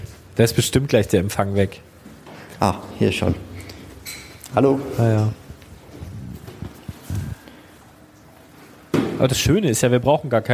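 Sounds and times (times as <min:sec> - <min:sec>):
speech: 0:00.4 - 0:01.9, 0:02.6 - 0:03.5, 0:04.5 - 0:05.4, 0:09.2 - 0:10.5
footsteps walking down a stairwell: 0:01.9 - 0:09.3.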